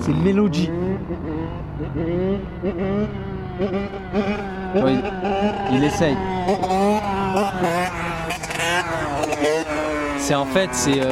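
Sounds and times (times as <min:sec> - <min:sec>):
motorcycle engine revving during wheelie: 0:00.0 - 0:11.1
speech: 0:00.1 - 0:08.0, 0:10.2 - 0:11.1.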